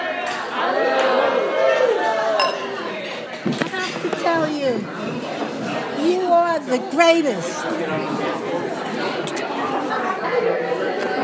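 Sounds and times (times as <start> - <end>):
murmur of crowd chatter and overlapping voices: 0.0 - 11.2
glasses clinking together in a wedding toast: 2.4 - 2.8
speech: 6.6 - 8.6.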